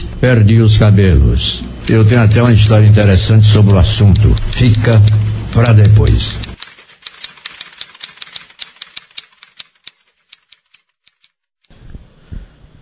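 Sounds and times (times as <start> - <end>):
speech: 0.2 - 6.5
mechanical typewriter keystrokes: 1.9 - 11.4.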